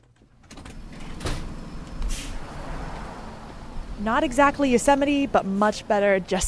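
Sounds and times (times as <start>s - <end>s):
studio door opening with a mechanical rush: 0.0s - 3.1s
low rumble of city noise at a four-way traffic light in Boston on a cold day: 0.0s - 6.4s
speech: 4.0s - 6.4s.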